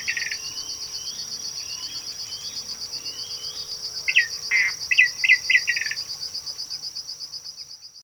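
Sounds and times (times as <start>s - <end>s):
high insect drone: 0.0s - 8.0s
many-colored rush tyrant Tachuris rubrigastra rubrigastra calls: 0.0s - 8.0s.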